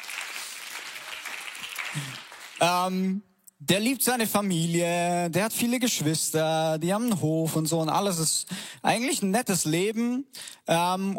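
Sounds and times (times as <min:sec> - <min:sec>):
applause from a live audience: 0:00.0 - 0:02.7
speech: 0:02.0 - 0:11.1.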